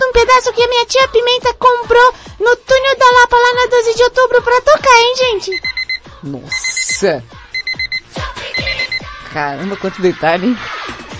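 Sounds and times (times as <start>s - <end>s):
speech: 0.2s - 7.4s, 9.3s - 10.8s
cheap pink alarm clock beeping: 5.5s - 9.1s.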